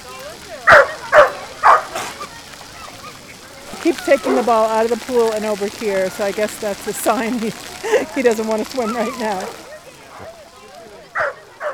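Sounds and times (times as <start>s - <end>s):
faint voices murmuring: 0.0s - 11.7s
dog barking: 0.7s - 2.3s, 11.2s - 11.7s
laughter: 3.7s - 9.6s
speech: 3.9s - 9.6s.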